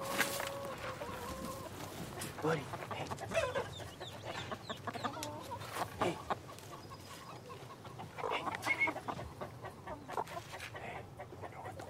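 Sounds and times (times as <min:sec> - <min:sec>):
scuffling and rustling in a chicken coop: 0:00.0 - 0:02.8
chickens clucking inside a coop: 0:00.0 - 0:11.8
speech: 0:02.4 - 0:03.7.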